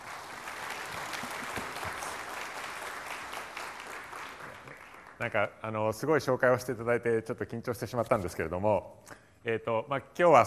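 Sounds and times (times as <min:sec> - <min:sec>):
audience applause at a tech company event: 0:00.0 - 0:05.3
speech: 0:05.2 - 0:10.4.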